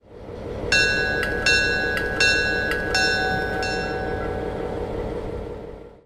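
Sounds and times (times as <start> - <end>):
bell: 0.7 - 5.1.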